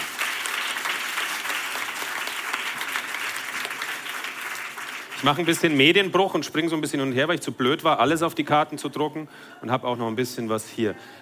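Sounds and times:
audience applause: 0.0 - 6.0
speech: 5.2 - 11.2.

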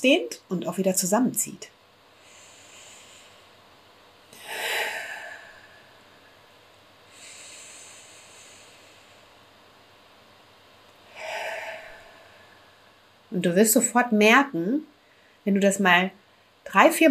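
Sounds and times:
speech: 0.0 - 1.8, 13.4 - 17.0
slow deep belly breathing: 2.1 - 9.9, 10.9 - 13.3.

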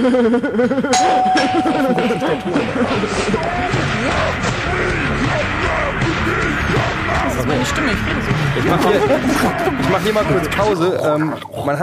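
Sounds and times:
speech: 0.0 - 5.0, 7.1 - 11.8
laughter: 0.0 - 10.8
doorbell chiming at a doorstep: 1.0 - 3.4.

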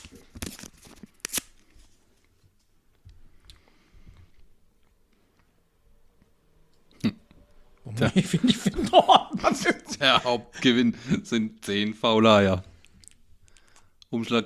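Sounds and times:
paper envelope being torn open at a prize draw: 0.0 - 1.9
laughter: 7.8 - 11.5
speech: 8.0 - 12.7, 14.1 - 14.4.

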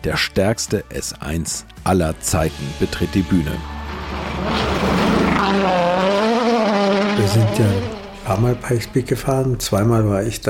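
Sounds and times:
speech: 0.0 - 6.2, 7.2 - 10.4
Audi Sport Quattro E2 rally car engine revving hard: 3.6 - 10.0.

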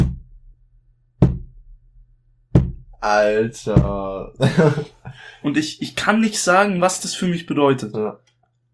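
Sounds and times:
rhythmic knocking on a wooden chair: 1.2 - 1.6, 2.6 - 3.0, 3.7 - 4.6
speech: 3.0 - 8.3
laughter: 4.2 - 5.6.

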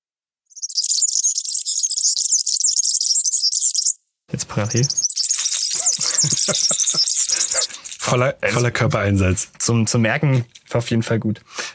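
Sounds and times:
European serin singing: 0.5 - 7.8
speech: 4.6 - 5.1, 6.2 - 11.6
laughter: 5.8 - 7.8.

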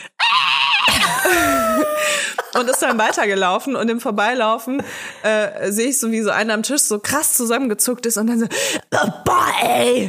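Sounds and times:
adult voice imitating a child's loud shrill scream: 0.2 - 2.1
speech: 2.6 - 10.0.

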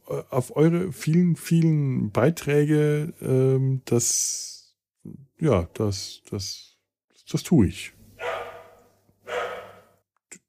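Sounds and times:
speech: 0.1 - 6.7, 7.3 - 8.0
dog barking in an echoing hallway: 8.2 - 10.0.

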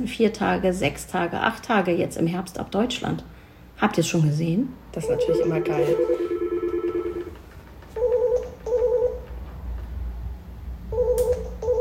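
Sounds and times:
speech: 0.0 - 6.2
electronic telephone ringing tone: 5.0 - 7.4, 8.0 - 9.3, 10.9 - 11.7.

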